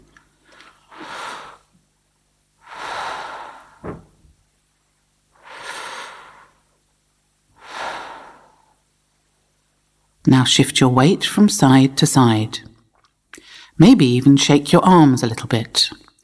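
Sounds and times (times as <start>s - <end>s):
slow deep breaths taken while standing: 0.0s - 1.8s, 2.6s - 4.4s, 5.3s - 6.8s, 7.5s - 8.9s, 13.3s - 13.8s
speech: 10.3s - 12.7s, 13.8s - 16.0s.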